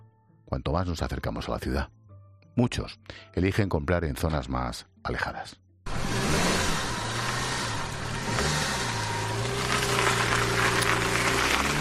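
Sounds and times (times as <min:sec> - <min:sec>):
speech: 0:00.5 - 0:02.0, 0:02.6 - 0:05.6
car engine revving hard: 0:05.9 - 0:11.8.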